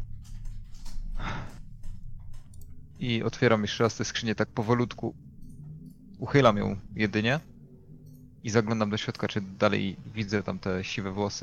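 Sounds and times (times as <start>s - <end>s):
faint low hum: 0.0s - 11.4s
deep breaths: 0.4s - 3.0s
speech: 3.0s - 5.3s, 6.2s - 7.5s, 8.4s - 11.4s.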